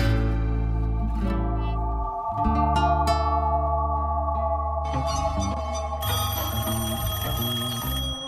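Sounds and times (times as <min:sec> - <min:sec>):
sustained musical tones: 0:00.2 - 0:08.2
telephone ringing loudly: 0:04.8 - 0:08.2.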